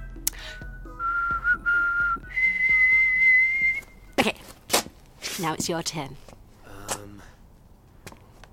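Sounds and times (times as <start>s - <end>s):
person whistling a short tune: 0.4s - 4.0s
speech: 5.4s - 6.3s.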